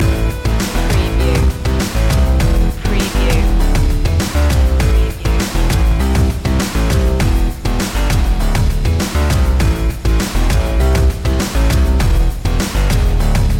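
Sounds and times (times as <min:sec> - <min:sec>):
electronic slam loop: 0:00.0 - 0:13.5.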